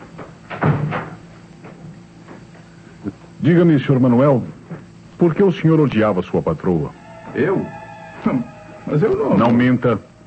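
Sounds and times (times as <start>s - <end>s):
door closing with a soft dull thud: 0.2s - 1.2s
speech: 3.4s - 4.6s, 5.2s - 10.1s.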